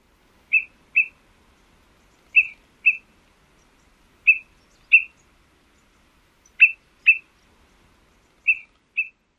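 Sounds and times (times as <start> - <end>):
Greater Pewee pip-pip call: 0.5 - 1.2, 2.0 - 3.1, 4.2 - 5.3, 6.4 - 7.4, 8.4 - 9.2.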